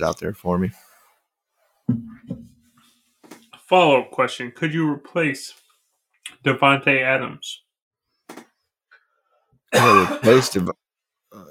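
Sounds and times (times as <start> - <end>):
speech: 0.0 - 0.9, 1.9 - 2.4, 3.7 - 5.6, 6.4 - 7.6, 9.7 - 11.4
man clearing his throat: 9.7 - 10.7
man coughing: 9.7 - 10.7.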